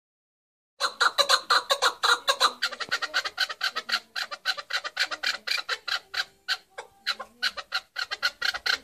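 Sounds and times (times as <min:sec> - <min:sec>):
Partridge giving rapid harsh clucking calls: 0:00.8 - 0:08.8.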